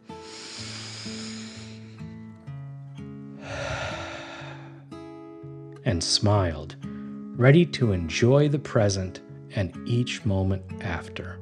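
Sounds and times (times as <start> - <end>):
deep breath in and out: 0.0 - 2.2, 3.4 - 4.9
speech: 5.9 - 6.8, 7.4 - 11.4.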